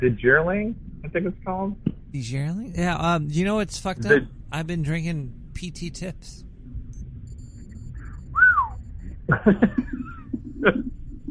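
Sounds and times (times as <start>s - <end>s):
speech: 0.0s - 6.5s, 9.3s - 11.0s
person whistling: 8.1s - 8.8s
chuckling laughter: 9.3s - 10.8s.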